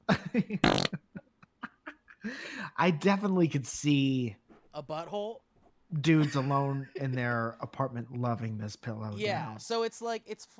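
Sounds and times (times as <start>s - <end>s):
speech: 0.1s - 1.0s, 2.3s - 10.5s
cartoonish fart sound effect from soundboard button: 0.6s - 1.0s.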